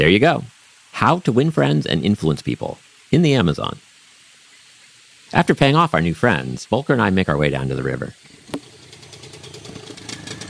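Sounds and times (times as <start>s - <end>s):
speech: 0.0s - 3.8s, 5.3s - 8.6s
outboard motor on a long skinny dugout canoe idling on an Amazon river: 8.3s - 10.4s.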